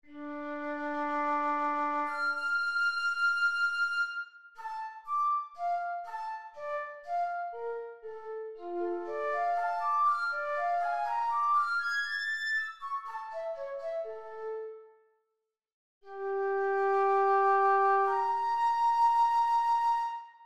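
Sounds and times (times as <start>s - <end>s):
slow flute: 0.0s - 14.9s, 16.1s - 20.4s.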